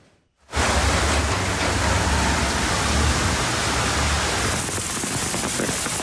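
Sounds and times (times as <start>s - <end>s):
heavy rain and hail pounding down in a downpour around Ankara: 0.5s - 6.0s.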